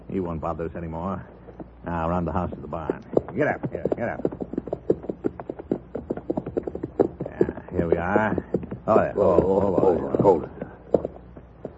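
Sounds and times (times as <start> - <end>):
speech: 0.1 - 4.4, 7.8 - 10.6
horse hooves clip-clopping: 0.2 - 11.7.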